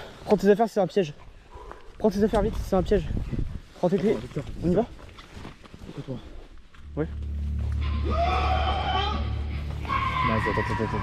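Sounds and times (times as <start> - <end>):
speech: 0.3 - 1.3, 2.0 - 5.0, 6.0 - 6.3, 7.0 - 7.3, 8.0 - 8.9, 10.2 - 11.0
person screaming under a bridge: 7.9 - 11.0.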